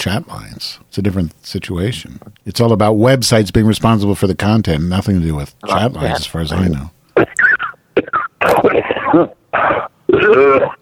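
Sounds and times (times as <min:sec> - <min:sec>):
speech: 0:00.0 - 0:07.4, 0:08.0 - 0:10.8
person clearing throat: 0:07.2 - 0:10.8
person coughing harshly: 0:07.2 - 0:10.8.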